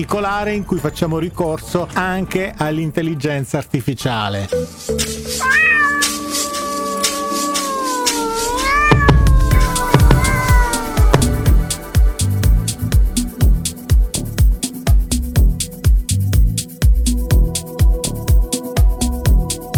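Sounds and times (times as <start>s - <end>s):
speech: 0.0s - 6.1s
steady rhythmic music with a sharp beat: 4.5s - 19.7s
cat meowing: 5.3s - 11.6s.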